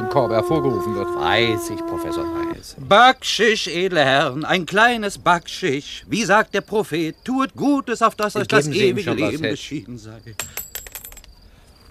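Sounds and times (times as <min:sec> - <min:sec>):
speech: 0:00.1 - 0:10.6
gold pound coin dropping: 0:10.4 - 0:11.3.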